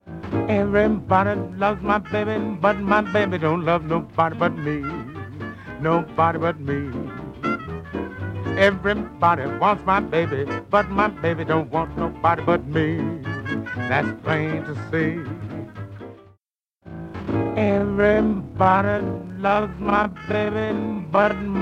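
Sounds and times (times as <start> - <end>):
staccato notes: 0.0 - 16.3, 16.9 - 21.6.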